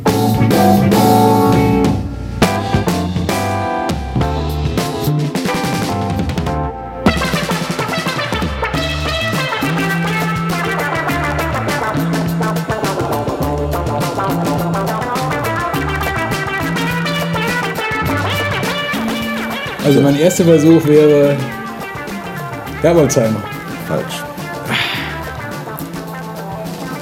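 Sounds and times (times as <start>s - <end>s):
steady pulsing bass line: 0.0s - 7.7s, 8.7s - 27.0s
wild synthesizer keyboard solo with fast darting melodic runs: 0.0s - 27.0s
speech: 20.2s - 21.6s, 22.8s - 24.3s.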